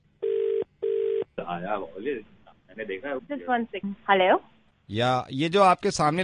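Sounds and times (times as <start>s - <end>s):
buzzing ringback tones of a phone call: 0.2s - 1.3s
speech: 1.4s - 6.2s.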